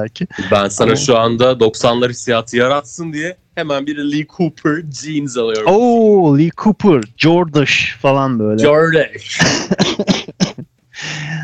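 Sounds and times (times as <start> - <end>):
speech: 0.0 - 10.2
laughter: 9.2 - 10.6
sick person coughing harshly: 9.3 - 10.7.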